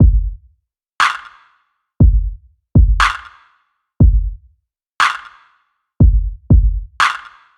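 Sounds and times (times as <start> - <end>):
electro dub jungle drum kit: 0.0 - 0.4, 2.0 - 3.3, 4.0 - 4.4, 6.0 - 7.3.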